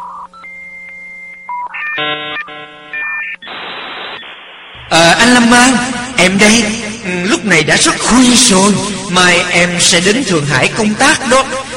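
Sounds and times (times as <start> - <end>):
electronic telephone beeps before a voicemail message: 0.0 - 4.4
speech: 5.2 - 11.7.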